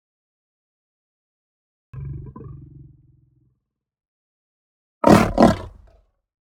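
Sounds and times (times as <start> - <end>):
lion giving a low rumbling growl: 5.0 - 5.9.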